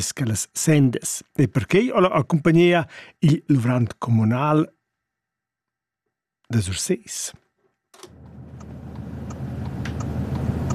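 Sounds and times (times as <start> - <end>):
speech: 0.0 - 4.8, 6.5 - 7.4
car driving with low engine rumble: 8.1 - 10.7.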